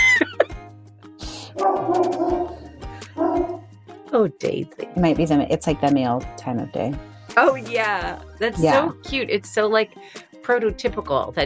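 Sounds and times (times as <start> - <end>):
several dogs barking and yipping: 1.5 - 3.7
speech: 4.2 - 11.4.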